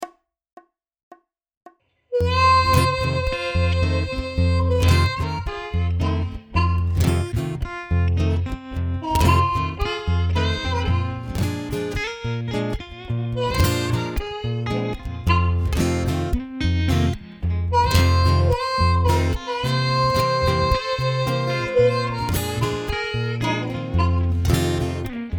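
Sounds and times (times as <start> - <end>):
harmonica playing: 2.1 - 25.3.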